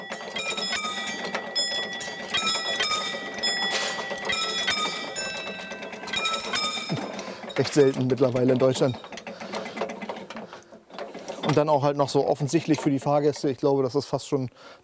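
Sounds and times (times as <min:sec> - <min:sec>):
railway crossing warning bell ringing at Heiligendamm station in Germany: 0:00.0 - 0:08.0
railway crossing barriers being lowered by hand, rattling and humming: 0:00.0 - 0:13.6
speech: 0:07.6 - 0:09.2, 0:11.5 - 0:14.8.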